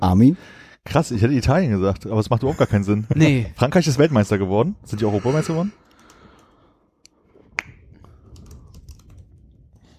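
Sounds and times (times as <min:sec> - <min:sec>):
speech: 0:00.1 - 0:05.8
laughter: 0:02.3 - 0:05.6
computer keyboard typing and clicking: 0:05.8 - 0:06.6, 0:08.1 - 0:09.8.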